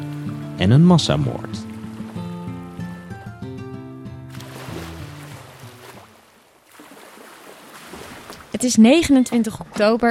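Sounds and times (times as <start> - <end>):
water lapping against the wooden hull of a new 46-metre ship at anchorage: 0.0 - 3.4, 4.3 - 10.0
held musical chord: 0.2 - 4.3
speech: 0.6 - 1.7, 8.6 - 10.0.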